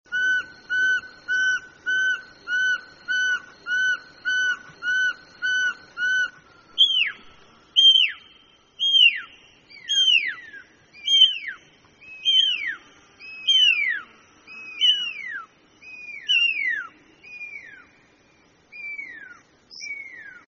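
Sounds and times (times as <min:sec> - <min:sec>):
pearl-spotted owlet singing: 0:00.1 - 0:20.4.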